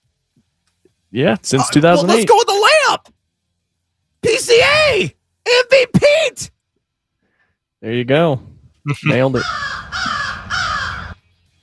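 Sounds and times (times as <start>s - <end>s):
speech: 1.1s - 3.2s, 4.3s - 6.5s, 7.8s - 9.7s
crow cawing: 9.4s - 11.2s.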